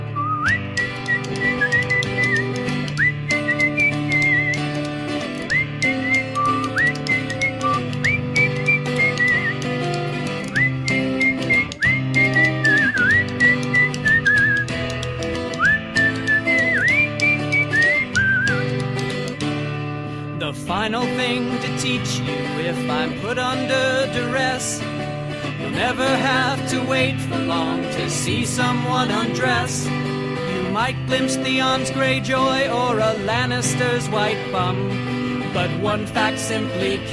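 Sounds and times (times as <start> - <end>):
person whistling a melody: 0.0 - 14.9, 15.5 - 18.9
backing music: 0.0 - 37.1
speech: 25.8 - 30.2, 30.8 - 37.1.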